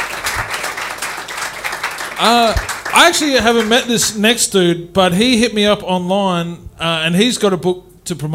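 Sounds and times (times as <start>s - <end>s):
live audience applauding: 0.0s - 4.2s
speech: 2.2s - 8.3s.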